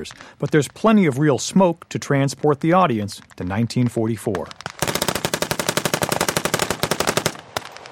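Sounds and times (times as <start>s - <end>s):
speech: 0.0s - 4.6s
continuous blank gunfire at a battle reenactment: 4.5s - 7.9s.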